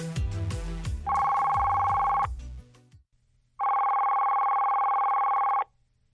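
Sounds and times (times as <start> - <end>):
telephone ringing for an incoming call: 1.1 - 2.3, 3.6 - 5.7.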